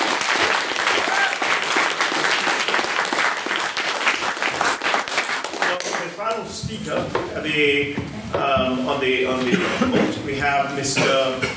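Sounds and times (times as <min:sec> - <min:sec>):
crowd applauding: 0:00.0 - 0:06.2
speech: 0:06.7 - 0:11.5.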